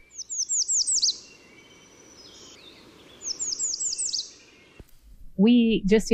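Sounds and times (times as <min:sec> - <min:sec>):
American redstart singing: 0:00.0 - 0:04.8
soft hiss: 0:00.0 - 0:06.1
speech: 0:05.4 - 0:06.1.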